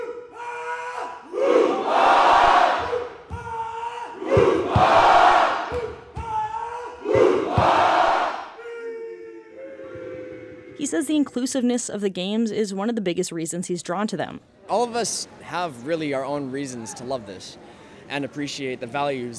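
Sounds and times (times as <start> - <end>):
crowd of spectators cheering at youth games: 0.0 - 10.8
speech: 10.9 - 19.3.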